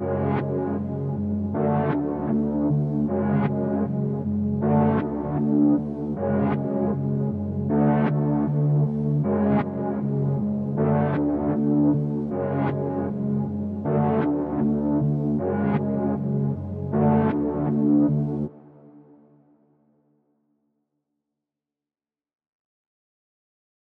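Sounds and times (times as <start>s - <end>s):
synthesizer in F sharp minor: 0.0s - 20.3s.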